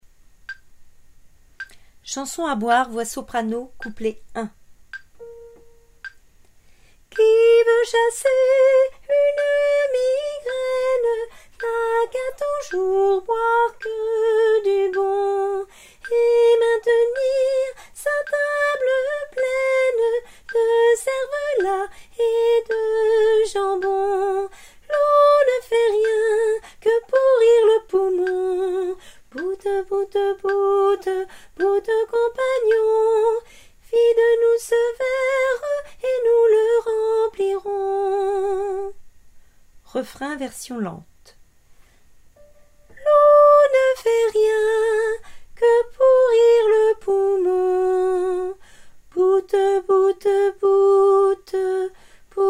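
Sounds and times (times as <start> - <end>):
soprano singing a drinking song: 1.6 - 4.6, 7.1 - 39.0, 42.4 - 52.4.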